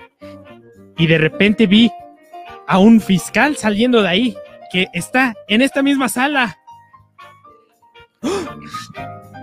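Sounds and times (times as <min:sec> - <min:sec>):
speech: 0:01.0 - 0:02.0, 0:02.7 - 0:06.6
loud breathy gasp: 0:08.2 - 0:09.0
person humming dramatic suspense tones: 0:08.2 - 0:09.1.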